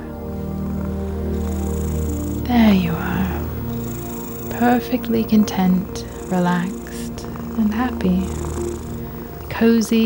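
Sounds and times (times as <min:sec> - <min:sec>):
cat purring: 0:00.0 - 0:10.0
speech: 0:02.7 - 0:03.0, 0:04.6 - 0:06.8, 0:07.6 - 0:08.5, 0:09.6 - 0:10.0.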